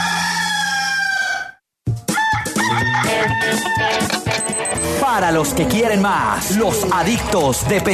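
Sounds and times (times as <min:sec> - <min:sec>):
rooster crowing: 0:00.0 - 0:04.1
busy upbeat music: 0:01.9 - 0:07.9
speech: 0:05.0 - 0:07.9.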